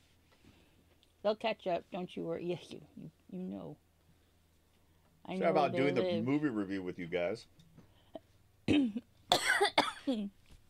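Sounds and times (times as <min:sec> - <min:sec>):
speech: 0:01.2 - 0:03.8, 0:05.3 - 0:07.7, 0:10.1 - 0:10.4
coughing and throat clearing into a microphone: 0:08.7 - 0:10.3.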